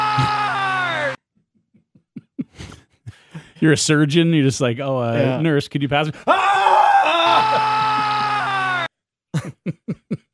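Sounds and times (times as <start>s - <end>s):
man screaming at top of lungs: 0.0s - 1.2s, 6.3s - 8.9s
speech: 3.6s - 7.7s.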